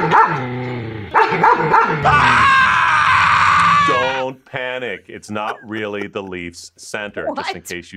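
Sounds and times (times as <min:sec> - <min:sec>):
police K-9 unit dogs barking loudly: 0:00.0 - 0:02.3
police K-9 unit dog drawn-out yelping cry: 0:01.1 - 0:02.3
speech: 0:01.5 - 0:02.6, 0:03.9 - 0:07.9
laughter: 0:05.2 - 0:06.7.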